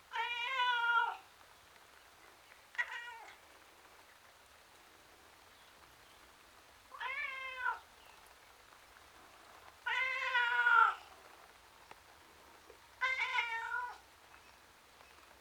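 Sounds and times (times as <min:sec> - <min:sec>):
male domestic tom cat meowing miserably outdoors: 0:00.1 - 0:01.2, 0:02.8 - 0:03.4, 0:06.9 - 0:07.8, 0:09.9 - 0:11.0, 0:13.0 - 0:14.0.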